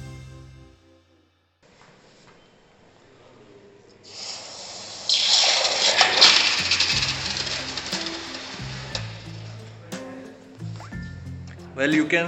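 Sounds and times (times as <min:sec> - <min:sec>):
red-hot metal component quenched in water: 0:04.1 - 0:09.9
speech: 0:11.8 - 0:12.2.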